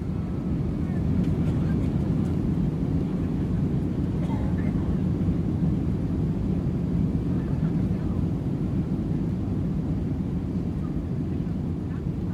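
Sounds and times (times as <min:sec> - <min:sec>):
passenger airplane speeding down a New York runway for takeoff: 0:00.0 - 0:12.3.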